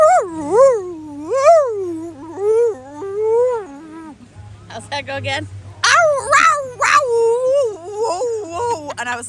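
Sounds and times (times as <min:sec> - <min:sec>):
person imitating a dog howling: 0:00.0 - 0:04.2, 0:05.8 - 0:09.0
speech: 0:05.0 - 0:05.6, 0:09.0 - 0:09.2.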